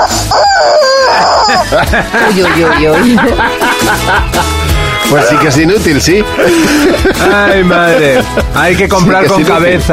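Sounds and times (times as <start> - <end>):
squeezed rubber chicken toy squawking: 0.0 - 1.6
laughter: 1.0 - 9.6
speech: 1.7 - 4.5, 5.1 - 9.9.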